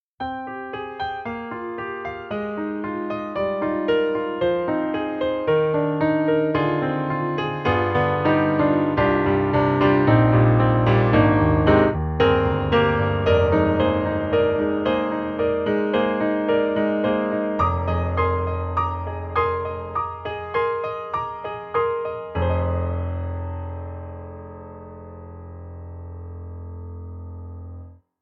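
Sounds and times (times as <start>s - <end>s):
German grand piano: 0.2s - 28.2s.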